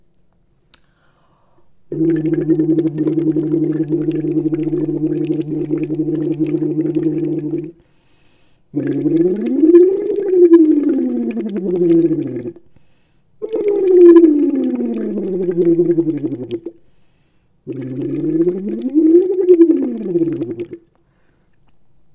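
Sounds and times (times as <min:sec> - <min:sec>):
voice humming through water with a bubble set in a voice exercise: 0:01.9 - 0:07.8, 0:08.7 - 0:12.7, 0:13.4 - 0:16.8, 0:17.7 - 0:20.9.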